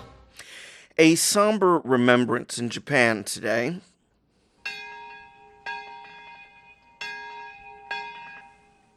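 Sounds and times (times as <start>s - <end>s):
speech: 1.0s - 3.9s
traditional Japanese bells struck: 4.6s - 8.9s.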